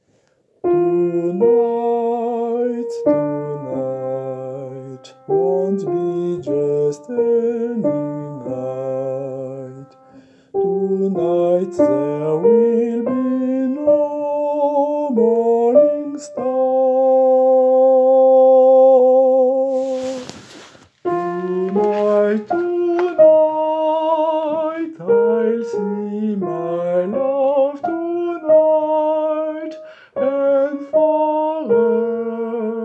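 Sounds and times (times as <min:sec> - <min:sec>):
soprano singing: 0:00.6 - 0:32.8.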